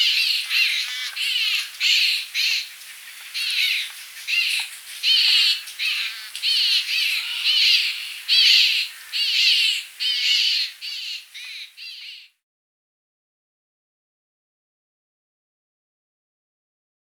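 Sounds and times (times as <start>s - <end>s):
large grey babbler family group calling together: 0.0s - 12.3s.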